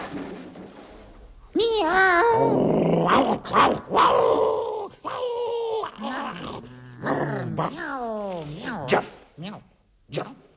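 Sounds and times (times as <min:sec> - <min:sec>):
person imitating a dog yelping and barking: 0:01.6 - 0:10.5
rough throaty dog growl: 0:02.2 - 0:08.9.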